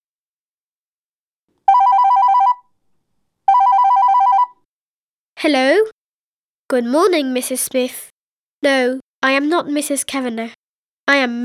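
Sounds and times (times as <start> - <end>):
telephone ringing with a warbling electronic trill: 1.7 - 2.7, 3.5 - 4.6
speech: 5.4 - 6.0, 6.7 - 11.4.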